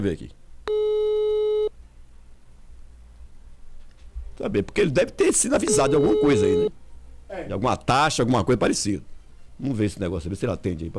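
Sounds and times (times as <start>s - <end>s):
speech: 0.0s - 0.4s, 4.4s - 10.9s
telephone busy signal on an unanswered call: 0.7s - 1.7s, 5.6s - 6.7s.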